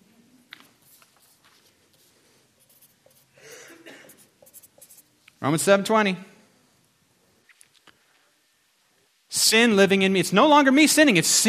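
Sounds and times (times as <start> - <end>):
pen scratching on paper while writing: 0.7 - 3.4, 4.1 - 5.1
speech: 5.4 - 6.3, 9.5 - 11.4.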